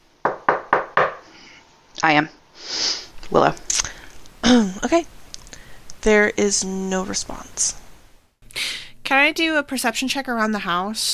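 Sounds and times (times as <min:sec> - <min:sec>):
knocking on the door of a house: 0:00.2 - 0:01.2
speech: 0:02.0 - 0:03.9, 0:04.5 - 0:05.2, 0:06.0 - 0:07.8, 0:09.1 - 0:11.1.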